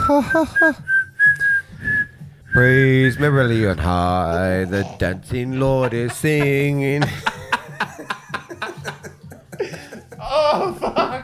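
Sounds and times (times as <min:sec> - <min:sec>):
smiling person trying to whistle: 0:00.0 - 0:03.6
speech: 0:00.1 - 0:00.9, 0:02.5 - 0:08.1
laughter: 0:05.2 - 0:11.2.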